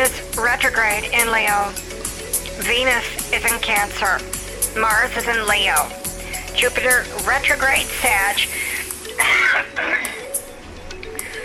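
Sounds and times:
speech: 0.6s - 2.0s, 2.6s - 6.0s, 6.6s - 8.6s
person coughing raspy: 9.2s - 10.3s.

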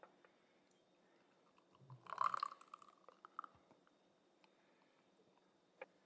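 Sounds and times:
beer pouring into a glass: 2.0s - 3.3s.

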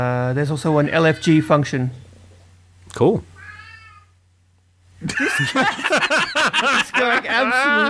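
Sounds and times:
speech: 0.0s - 2.0s, 3.0s - 3.3s, 5.0s - 7.8s
low hum: 0.0s - 7.8s
cat meowing loudly: 3.4s - 4.2s
laughter: 5.0s - 7.8s.

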